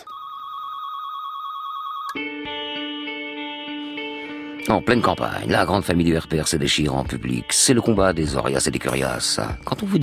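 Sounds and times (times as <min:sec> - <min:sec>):
electronic telephone ringing: 0:00.0 - 0:02.3
speech: 0:02.1 - 0:02.6, 0:04.7 - 0:10.0.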